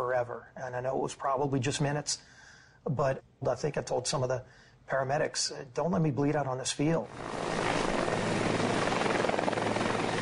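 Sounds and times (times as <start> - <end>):
speech: 0.0 - 7.8
helicopter flying overhead: 7.1 - 10.2.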